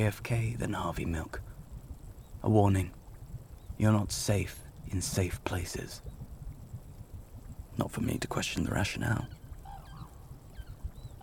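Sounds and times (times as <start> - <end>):
speech: 0.0 - 1.5, 2.4 - 3.0, 3.8 - 6.2, 7.8 - 9.4
low steady rumble: 0.0 - 11.2
cranes calling in snow-covered wetlands of Kushiro National Park: 8.8 - 11.2.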